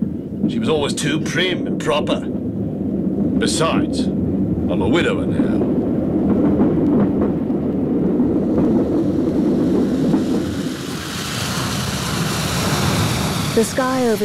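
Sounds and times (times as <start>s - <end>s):
train rumbling as it slows into a station in Sydney: 0.0s - 14.2s
speech: 0.5s - 2.4s, 3.4s - 5.8s, 13.6s - 14.2s.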